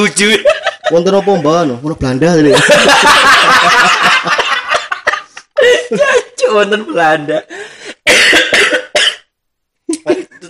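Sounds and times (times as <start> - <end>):
laughter: 0.0 - 1.7, 2.5 - 6.4
speech: 0.0 - 4.4, 5.9 - 8.6
person coughing in harsh hacking bursts: 8.1 - 9.3.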